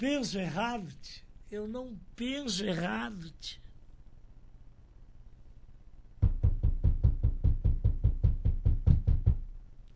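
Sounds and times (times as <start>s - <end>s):
speech: 0.0s - 3.6s
loud knocking on a door: 6.2s - 9.5s.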